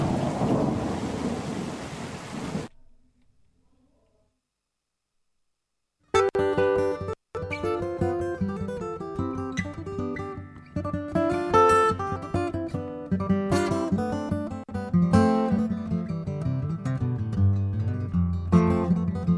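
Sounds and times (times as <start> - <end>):
dense hiss of rain in a thunderstorm: 0.0 - 2.7
rumbling thunder in a thunderstorm: 0.0 - 2.7
music with steady tonal instruments: 6.1 - 19.3.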